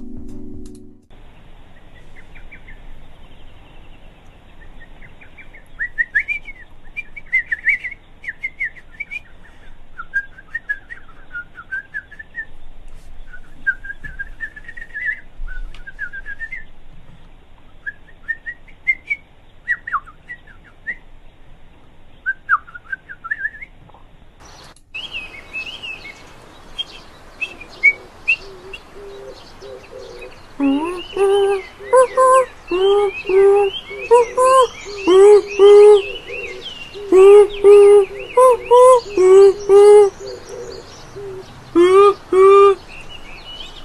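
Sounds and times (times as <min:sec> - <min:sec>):
lesser cuckoo calling: 0:26.8 - 0:43.4.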